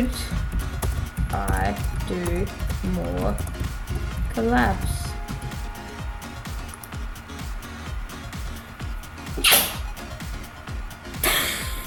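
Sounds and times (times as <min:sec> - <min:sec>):
quiet backing track with a steady low beat: 0:00.0 - 0:11.8
speech: 0:01.3 - 0:03.6, 0:04.4 - 0:05.0
person sneezing: 0:09.4 - 0:09.9.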